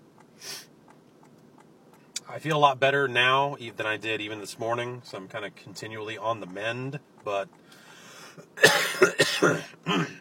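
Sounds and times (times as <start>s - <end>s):
speech: 2.3s - 7.6s, 8.6s - 10.1s
person coughing while ill: 8.6s - 10.1s.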